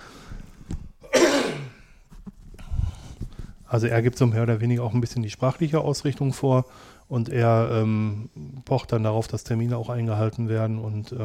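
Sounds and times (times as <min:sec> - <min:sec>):
breaths: 0:00.0 - 0:00.9, 0:01.7 - 0:03.7, 0:06.6 - 0:07.1
loud raspy throat clearing: 0:01.0 - 0:01.9
speech: 0:03.7 - 0:11.2.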